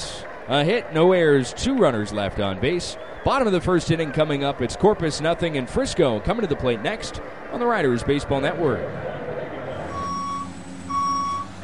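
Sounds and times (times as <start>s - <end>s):
speech: 0.5s - 9.2s
low engine rumble: 3.2s - 11.6s
reversing beeps from construction equipment: 9.9s - 11.6s.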